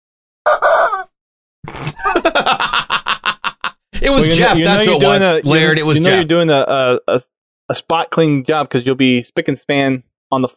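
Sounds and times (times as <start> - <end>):
rubber chicken toy squawking: 0.5 - 1.1
laughter: 1.8 - 6.3
speech: 2.3 - 2.7, 4.1 - 10.5.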